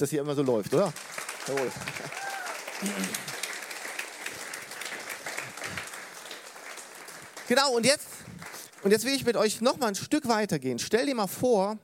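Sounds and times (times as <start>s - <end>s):
speech: 0.0s - 3.3s, 7.5s - 8.2s, 8.8s - 11.8s
crowd applauding: 0.3s - 9.6s.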